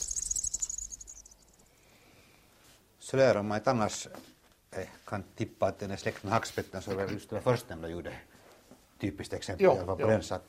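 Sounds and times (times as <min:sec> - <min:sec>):
Eurasian wryneck young giving a high rapid trilling buzz: 0:00.0 - 0:01.6
speech: 0:03.1 - 0:08.3, 0:09.0 - 0:10.4.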